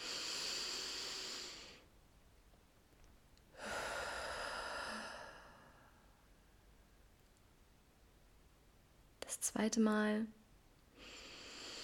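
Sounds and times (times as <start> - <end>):
slow deep breathing into the belly during a guided relaxation exercise: 0.0 - 1.9, 3.5 - 6.1, 11.0 - 11.8
speech: 9.4 - 10.4.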